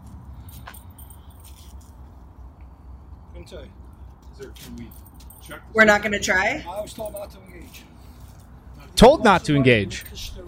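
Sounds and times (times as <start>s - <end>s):
keys jangling: 0.0s - 2.3s, 4.0s - 5.7s, 6.7s - 8.6s
speech: 3.4s - 3.8s, 4.4s - 7.9s, 9.0s - 10.4s.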